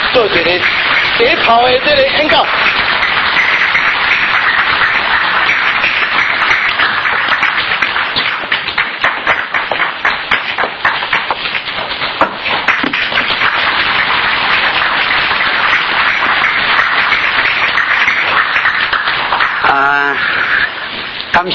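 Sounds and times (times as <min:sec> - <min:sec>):
audience applause: 0:00.0 - 0:21.5
speech: 0:00.2 - 0:02.8.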